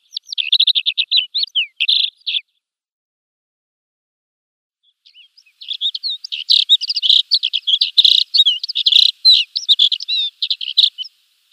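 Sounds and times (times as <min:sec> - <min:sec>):
Alpine accentor song: 0:00.0 - 0:02.5, 0:05.1 - 0:11.5.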